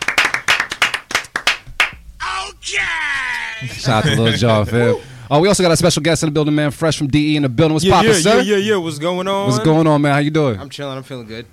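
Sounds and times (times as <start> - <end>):
people clapping in celebration: 0.0 - 2.0, 2.8 - 3.7
speech: 2.6 - 11.5.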